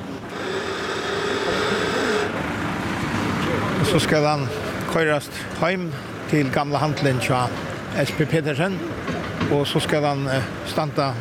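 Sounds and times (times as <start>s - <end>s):
faint mechanical whine of a crane: 0.0s - 8.8s
crane engine droning while hoisting an old boat: 0.0s - 11.1s
speech: 3.9s - 11.1s.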